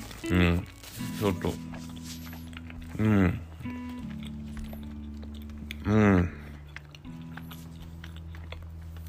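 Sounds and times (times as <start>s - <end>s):
chewing and biting food: 0.0s - 9.0s
steady low hum: 0.0s - 9.0s
speech: 0.2s - 1.7s, 3.0s - 3.5s, 5.9s - 6.4s.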